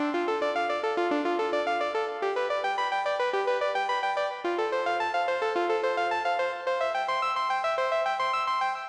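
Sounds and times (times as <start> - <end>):
lead stem music loop: 0.1 - 8.8.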